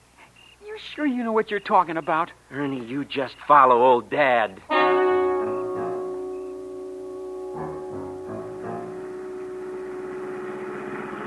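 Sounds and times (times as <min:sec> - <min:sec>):
speech: 0:00.8 - 0:05.0
car engine running with a tonal whine: 0:05.2 - 0:11.2.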